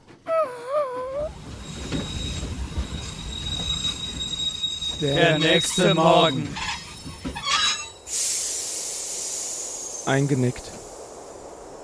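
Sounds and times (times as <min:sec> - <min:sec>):
train rumbling on rails: 0:01.1 - 0:11.8
speech: 0:05.0 - 0:06.7, 0:10.1 - 0:10.8
steady hiss: 0:08.0 - 0:11.8.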